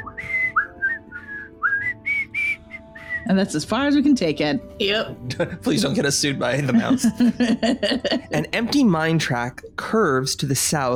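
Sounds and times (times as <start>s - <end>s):
several people whistling a bouncy marching melody: 0.0s - 3.3s
speech: 3.2s - 10.9s
laughter: 5.3s - 8.5s.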